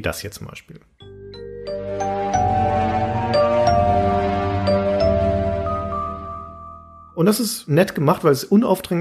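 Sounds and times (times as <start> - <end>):
speech: 0.0 - 0.9, 7.2 - 8.9
gentle video game music transition sting with bell-like tones over soft bass: 1.7 - 6.9.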